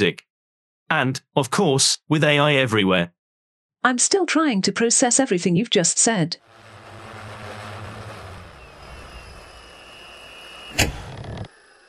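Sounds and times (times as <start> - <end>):
speech: 0.0 - 0.3, 0.9 - 3.2, 3.8 - 6.6
flying car mechanical hum with high whine while docking: 6.4 - 11.8
flying car door opening hiss: 9.2 - 11.8
flying car door clunk: 10.8 - 11.5.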